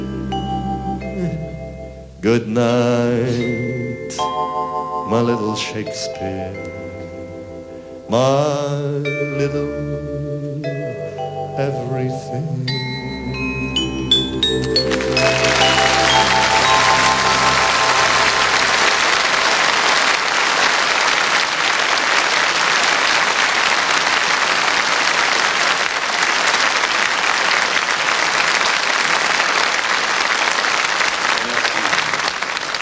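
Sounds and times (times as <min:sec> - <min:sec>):
closing musical notes: 0:00.0 - 0:20.8
speech: 0:02.2 - 0:06.9, 0:08.1 - 0:10.3, 0:11.6 - 0:13.0
large audience applauding loudly: 0:14.6 - 0:32.7.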